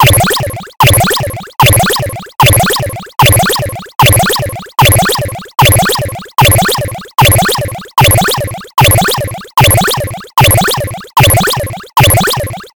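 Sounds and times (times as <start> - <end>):
cartoon machine pulsating: 0.0 - 12.7.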